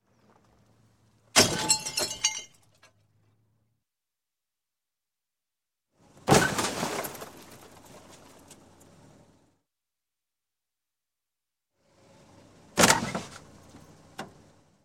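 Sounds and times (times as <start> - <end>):
small car head-on crash: 1.3 - 2.2, 6.2 - 8.8, 12.7 - 13.5
glass breaking in car crash: 1.4 - 2.9.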